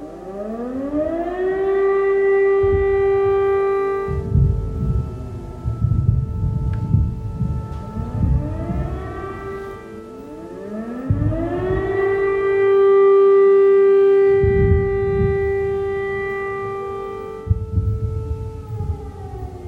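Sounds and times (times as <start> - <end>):
air raid siren wailing: 0.0 - 19.6
deep booms of distant explosions: 1.9 - 19.6.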